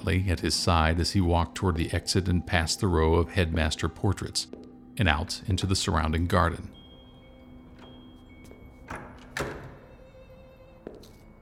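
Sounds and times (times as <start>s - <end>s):
speech: 0.1s - 6.8s
door swinging shut with a dull solid thud: 8.8s - 9.9s.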